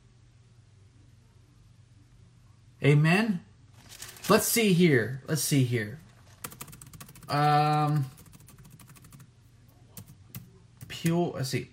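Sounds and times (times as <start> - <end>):
speech: 2.8 - 3.5, 4.3 - 6.0, 7.3 - 8.2, 11.0 - 11.7
typing on a computer keyboard: 6.4 - 9.3, 10.0 - 11.1.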